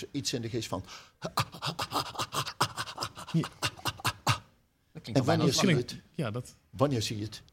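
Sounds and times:
speech: 0.0s - 2.2s, 3.3s - 3.7s, 5.0s - 7.5s
person imitating ape play pants with mouth wide open: 1.2s - 4.6s.

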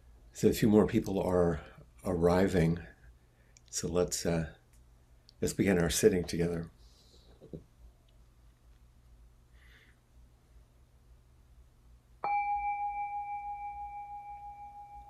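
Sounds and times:
speech: 0.4s - 2.9s, 3.7s - 4.6s, 5.4s - 6.8s
temple bell struck: 12.2s - 15.0s.

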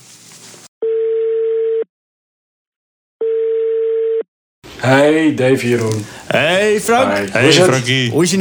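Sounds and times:
telephone ringback tone as a call is placed: 0.8s - 1.9s, 3.2s - 4.2s
speech: 4.8s - 8.4s.

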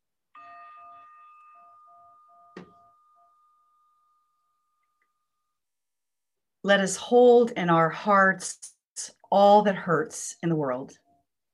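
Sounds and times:
meditation chime ringing: 0.0s - 5.8s
soft knock: 2.6s - 2.8s
speech: 6.6s - 11.0s.

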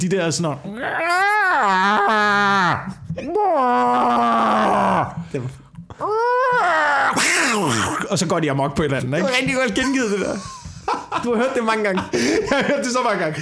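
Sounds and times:
speech: 0.0s - 6.1s, 6.7s - 10.6s, 11.2s - 13.4s
person imitating fighting cats yowling: 0.7s - 5.2s, 6.0s - 8.0s
laughter: 9.2s - 13.4s.

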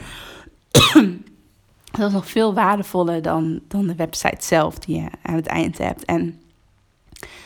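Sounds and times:
person coughing harshly: 0.8s - 1.2s
speech: 0.9s - 1.3s, 1.9s - 6.4s
soft breathy noise: 7.2s - 7.4s.

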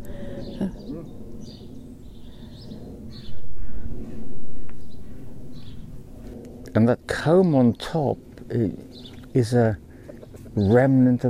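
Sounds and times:
steady outdoor rumble: 0.0s - 11.2s
speech: 0.6s - 0.8s, 6.8s - 9.8s, 10.6s - 11.2s
chicken clucking and murmuring: 10.0s - 10.8s.

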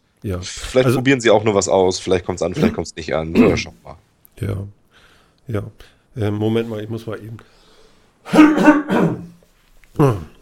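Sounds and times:
speech: 0.2s - 4.8s, 5.5s - 7.6s, 8.2s - 9.2s, 10.0s - 10.3s
person clearing throat: 2.6s - 3.8s, 8.2s - 9.4s.

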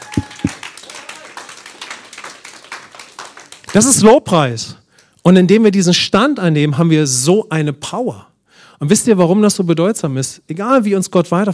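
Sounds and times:
congregation applauding: 0.0s - 4.0s
speech: 3.7s - 11.5s.

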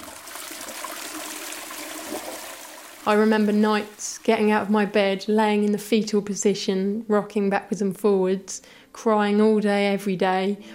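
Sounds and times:
toilet flushing: 0.0s - 4.7s
speech: 3.0s - 10.7s.

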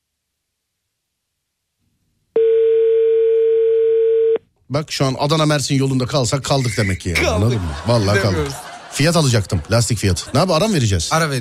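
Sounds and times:
telephone ringback tone on an outgoing call: 2.4s - 4.4s
speech: 4.7s - 11.3s
laughter: 6.7s - 11.1s.

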